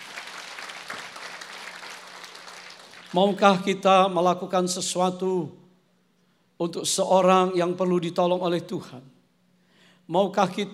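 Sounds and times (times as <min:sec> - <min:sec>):
audience applauding: 0:00.0 - 0:03.4
speech: 0:03.1 - 0:05.6, 0:06.6 - 0:09.2, 0:10.1 - 0:10.7.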